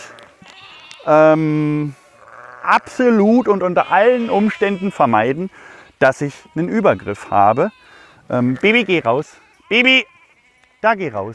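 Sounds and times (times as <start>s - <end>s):
sheep bleating: 0.0s - 11.3s
speech: 1.0s - 2.0s, 2.6s - 10.1s, 10.8s - 11.3s.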